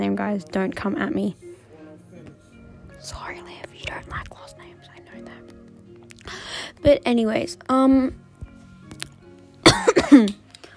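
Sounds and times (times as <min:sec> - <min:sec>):
speech: 0:00.2 - 0:01.4, 0:03.0 - 0:03.5, 0:06.8 - 0:08.2, 0:10.1 - 0:10.4
sharp cough: 0:09.6 - 0:10.4.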